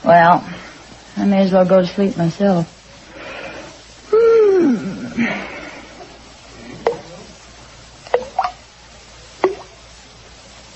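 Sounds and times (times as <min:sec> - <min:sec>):
speech: 0:00.1 - 0:00.6, 0:01.2 - 0:02.8, 0:04.6 - 0:05.5
breathy wavering vocal sound: 0:03.2 - 0:06.0
bathroom faucet dripping: 0:06.6 - 0:07.4, 0:08.0 - 0:08.7, 0:09.4 - 0:09.9.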